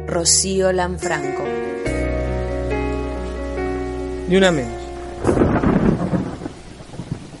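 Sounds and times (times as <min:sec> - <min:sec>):
speech: 0:00.1 - 0:01.9, 0:04.3 - 0:05.3
steady rain: 0:01.9 - 0:07.3
deep roll of thunder: 0:04.9 - 0:07.3.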